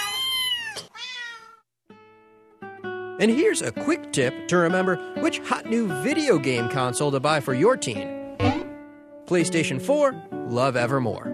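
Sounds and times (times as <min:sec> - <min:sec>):
cat meowing loudly: 0:00.0 - 0:01.6
speech: 0:03.2 - 0:08.6, 0:09.3 - 0:11.3.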